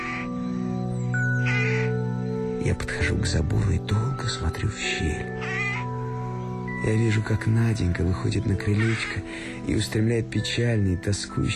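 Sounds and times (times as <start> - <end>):
rooks cawing as they settle to roost on a cold early-spring evening: 0.0 - 3.2, 5.2 - 6.7, 8.6 - 9.6
speech: 2.6 - 5.6, 6.8 - 11.5.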